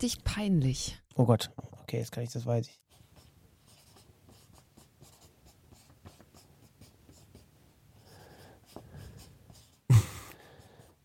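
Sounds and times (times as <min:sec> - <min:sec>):
speech: 0:00.0 - 0:02.8
pen or pencil scratching on paper while writing by hand: 0:02.9 - 0:09.9.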